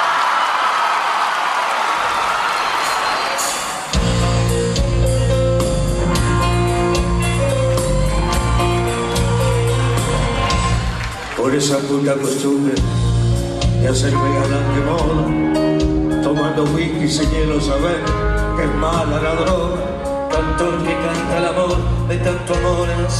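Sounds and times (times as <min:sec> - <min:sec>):
large audience clapping and cheering: 0:00.0 - 0:13.0
band playing music: 0:03.0 - 0:23.1
speech: 0:11.6 - 0:13.0, 0:13.8 - 0:15.8, 0:16.6 - 0:23.1.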